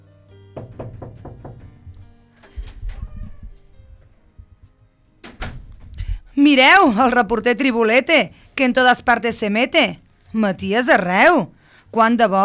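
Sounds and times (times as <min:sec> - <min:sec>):
clunk and rattle of a door being opened: 0:00.6 - 0:04.2, 0:05.2 - 0:06.2
quick knocks on a door: 0:00.6 - 0:04.6
solid thump: 0:00.6 - 0:04.6
speech: 0:06.5 - 0:12.4.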